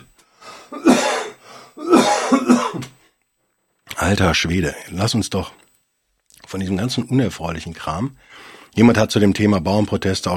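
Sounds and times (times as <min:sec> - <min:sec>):
person coughing: 0:00.0 - 0:02.9
person clearing throat: 0:00.7 - 0:02.9
speech: 0:04.1 - 0:05.6, 0:06.5 - 0:10.3.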